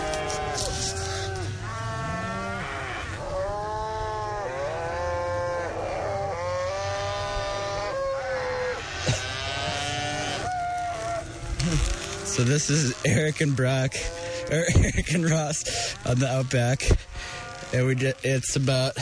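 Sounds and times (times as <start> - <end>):
cows mooing: 0.0 - 19.0
speech: 9.1 - 9.3, 12.4 - 17.1, 17.7 - 19.0.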